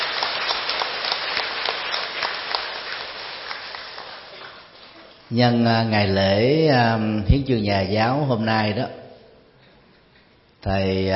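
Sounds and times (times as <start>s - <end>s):
crowd applauding at a Vietnamese Teachers' Day celebration: 0.0s - 5.2s
speech: 5.3s - 9.0s, 10.6s - 11.1s.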